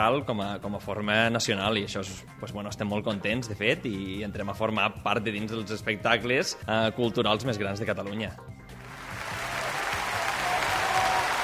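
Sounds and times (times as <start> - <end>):
speech: 0.0 - 8.6
crowd applauding: 8.8 - 11.4.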